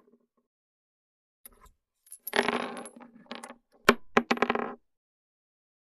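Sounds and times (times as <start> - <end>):
foley gun movement: 1.5 - 2.5
bullet dropping on wood: 1.5 - 4.8.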